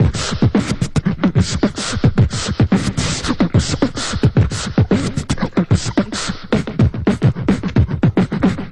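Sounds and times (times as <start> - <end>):
beatboxing: 0.0 - 8.6
chugalong rhythm: 0.0 - 8.6
drum loops: 0.0 - 8.6.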